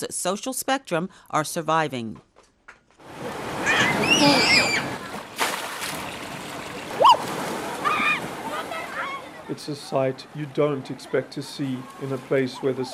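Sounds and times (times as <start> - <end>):
speech: 0.0 - 2.3, 4.0 - 4.9, 9.5 - 12.9
splashing and rushing water from water slides at a water fun park in Cape Town: 3.0 - 12.9
children's excited shrieks and calls: 3.5 - 5.1, 7.0 - 9.4.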